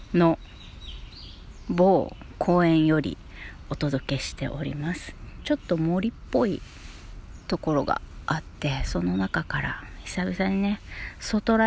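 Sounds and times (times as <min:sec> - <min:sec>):
birds chirping in a wooded park in Okinawa: 0:00.0 - 0:11.6
speech: 0:00.1 - 0:00.6, 0:01.7 - 0:06.8, 0:07.5 - 0:11.6.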